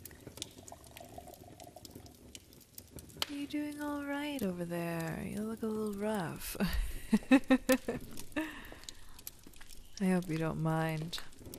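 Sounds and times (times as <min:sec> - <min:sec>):
drink pouring into a glass: 0:00.0 - 0:02.1
speech: 0:03.5 - 0:08.2, 0:10.0 - 0:11.3.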